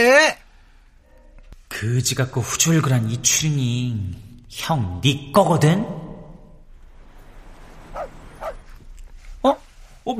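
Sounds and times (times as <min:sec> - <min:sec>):
speech: 0:00.0 - 0:00.4, 0:01.8 - 0:06.0, 0:09.4 - 0:10.1
stray dog barking at the window: 0:07.9 - 0:08.8.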